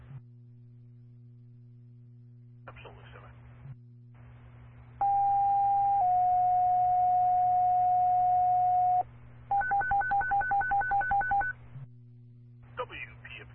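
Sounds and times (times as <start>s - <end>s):
low hum: 0.0s - 12.9s
dispatch paging tones over a radio channel: 5.0s - 11.5s.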